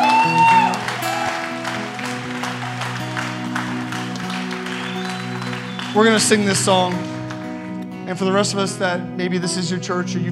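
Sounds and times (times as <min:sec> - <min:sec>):
church congregation applauding: 0:00.0 - 0:07.8
sustained keyboard chords: 0:00.8 - 0:10.3
speech: 0:06.0 - 0:07.1, 0:08.1 - 0:10.3.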